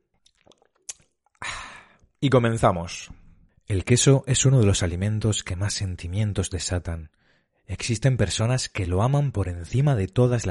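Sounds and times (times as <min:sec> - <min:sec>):
person gulping water: 0:00.1 - 0:01.5
speech: 0:02.2 - 0:10.4.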